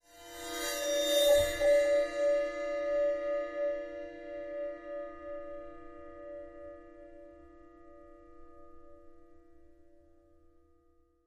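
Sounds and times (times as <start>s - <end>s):
bowed bell of a 6 inch splash cymbal: 0.0s - 10.7s.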